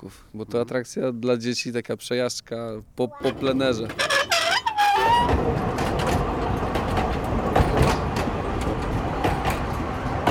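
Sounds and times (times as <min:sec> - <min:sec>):
speech: 0:00.0 - 0:04.3
narrow-gauge tourist train with 1970s or 1980s locomotive clattering along tracks: 0:03.2 - 0:10.3.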